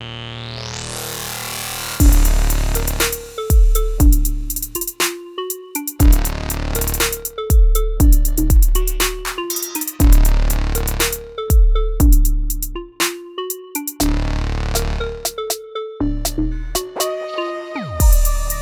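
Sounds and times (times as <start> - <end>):
trap beat on an Oberheim SEM synthesizer: 1.4 - 18.6.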